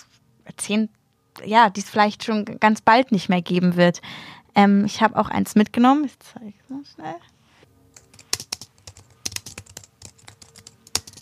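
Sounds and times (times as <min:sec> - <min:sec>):
speech: 0:00.7 - 0:07.3
typing on a computer keyboard: 0:07.9 - 0:11.2.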